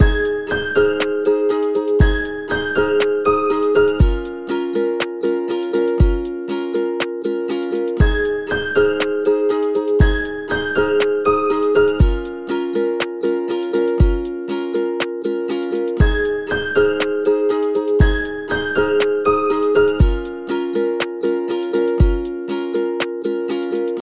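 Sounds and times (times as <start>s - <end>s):
lofi type beat: 0.0s - 24.0s.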